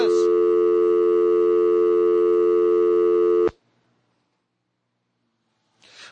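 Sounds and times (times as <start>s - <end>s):
electronic telephone busy signal after a dropped call: 0.0s - 3.5s.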